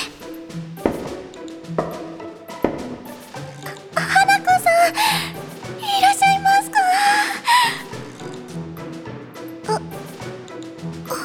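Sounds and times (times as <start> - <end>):
music playing: 0.0 - 11.2
sharp knocking on a door: 0.8 - 3.1.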